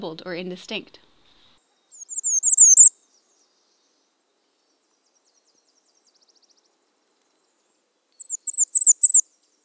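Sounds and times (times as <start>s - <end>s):
speech: 0.0s - 1.1s
bay-breasted warbler song: 1.6s - 6.8s, 7.5s - 9.6s.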